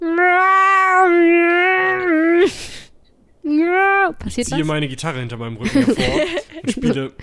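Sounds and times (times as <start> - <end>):
person imitating a yowling cat: 0.0 - 2.6, 3.5 - 4.2
breathy noise: 1.9 - 3.8
speech: 4.2 - 7.2
laughter: 5.6 - 7.2.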